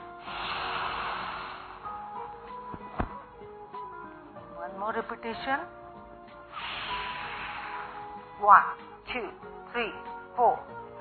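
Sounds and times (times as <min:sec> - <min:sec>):
slow exhale through the nose during alternate-nostril breathing: 0:00.0 - 0:02.0, 0:06.5 - 0:08.1
speech: 0:04.8 - 0:05.8, 0:08.4 - 0:10.9.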